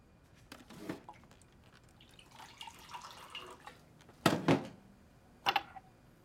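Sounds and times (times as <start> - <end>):
water poured from pitcher trickling into a glass: 1.8 - 3.9.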